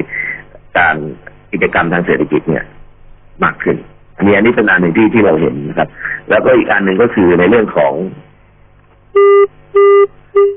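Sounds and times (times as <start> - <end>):
speech: 1.6 - 2.8, 3.4 - 8.2, 9.2 - 9.9
phone line disconnect beeps on an international call from the United States: 9.2 - 10.5.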